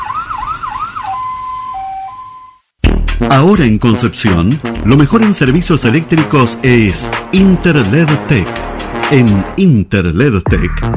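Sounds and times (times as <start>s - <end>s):
private ambulance siren wailing: 0.0s - 2.7s
low rumble of traffic: 0.0s - 2.8s
speech: 3.3s - 10.9s.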